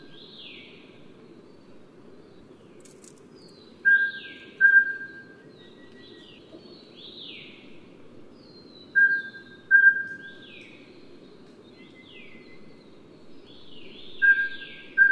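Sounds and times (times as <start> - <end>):
birds chirping: 0.0 - 15.1
mountain scops owl giving paired whistled hoots at Yushan: 3.8 - 6.6, 9.0 - 10.3, 14.2 - 15.1.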